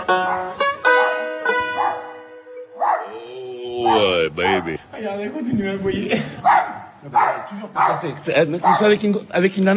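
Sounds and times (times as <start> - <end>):
dog barking nonstop: 0.2 - 3.2, 3.9 - 4.8, 6.5 - 9.0
dog whimpering yelps: 2.8 - 4.7
speech: 4.3 - 9.7.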